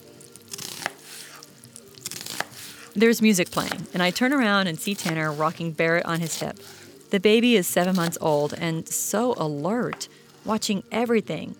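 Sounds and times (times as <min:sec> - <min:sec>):
knife chopping an onion on a board: 0:00.5 - 0:06.9, 0:07.6 - 0:08.6
speech: 0:03.0 - 0:11.5.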